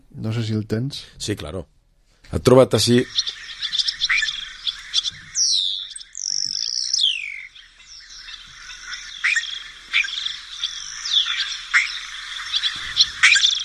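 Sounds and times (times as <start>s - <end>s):
speech: 0.2s - 3.5s
starling song outdoors in the wild: 2.7s - 13.6s.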